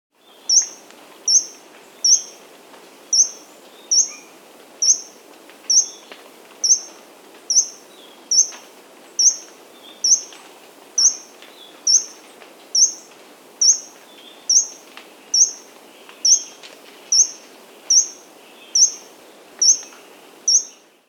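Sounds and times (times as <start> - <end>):
Bronzy Inca Coeligena coeligena, Andean bird of South America: 0.2 - 2.4, 3.1 - 20.9.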